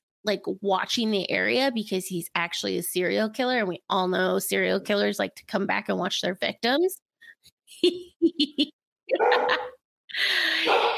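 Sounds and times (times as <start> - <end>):
speech: 0.2 - 7.0, 7.7 - 10.9
dogs barking: 9.1 - 9.8, 10.6 - 10.9.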